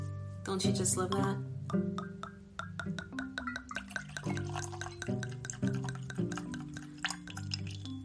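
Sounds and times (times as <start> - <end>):
speech: 0.4 - 2.2
whiskey drips and splashes: 2.0 - 8.0
whiskey pouring into a Glencairn glass: 2.6 - 8.0.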